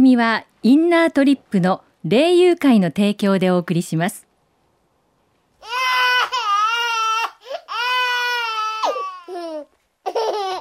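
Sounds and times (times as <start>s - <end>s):
speech: 0.0s - 4.3s
baby crying in long wavering wails and sobs: 5.6s - 10.6s
baby gasping breaths: 7.4s - 7.8s.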